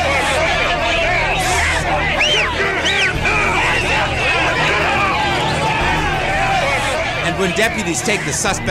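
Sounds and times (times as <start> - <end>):
dense crowd of demonstrators shouting angrily at police: 0.0 - 8.6
raised voices: 0.0 - 8.6
speech: 7.4 - 8.6.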